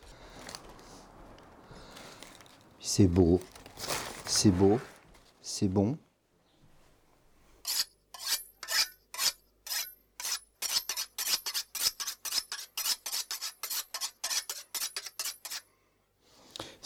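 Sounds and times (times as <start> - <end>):
speech: 2.9 - 3.6, 4.4 - 4.9, 5.5 - 6.0
hard ingredient being grated onto a salad: 7.6 - 15.7.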